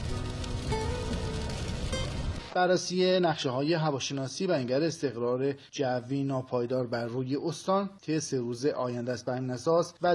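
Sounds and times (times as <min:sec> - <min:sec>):
steady rain falling with an even hiss: 0:00.0 - 0:02.6
speech: 0:02.6 - 0:10.1.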